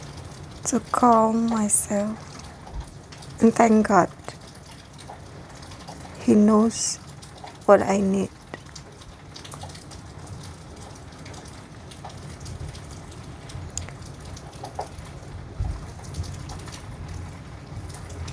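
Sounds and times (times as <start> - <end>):
steady rain falling: 0.0 - 18.3
speech: 0.6 - 2.3, 3.4 - 4.3, 6.3 - 7.0, 7.7 - 8.4.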